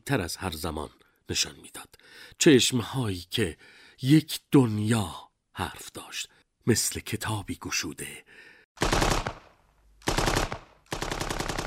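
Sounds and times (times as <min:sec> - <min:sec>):
speech: 0:00.1 - 0:09.0
rapid gunfire bursts: 0:08.8 - 0:11.6.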